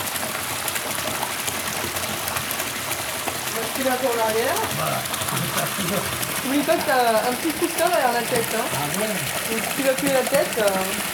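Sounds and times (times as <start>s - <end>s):
warm water running into a filling bath: 0.0s - 11.1s
speech: 3.8s - 11.1s.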